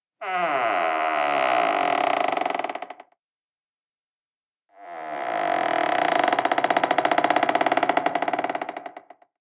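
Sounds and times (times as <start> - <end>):
door creaking: 0.2 - 3.0, 4.8 - 9.1.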